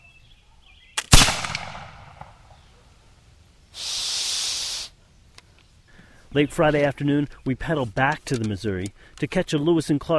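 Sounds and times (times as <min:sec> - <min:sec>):
gunshot: 0:01.0 - 0:02.5
hissing burst: 0:03.8 - 0:05.0
speech: 0:06.3 - 0:10.1.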